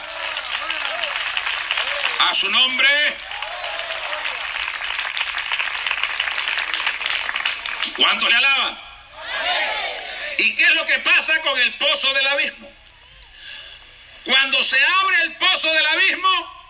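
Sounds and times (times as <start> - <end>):
large church congregation applauding: 0.0 - 8.3
speech: 2.2 - 3.3, 8.0 - 8.9, 10.4 - 12.8, 14.5 - 16.5.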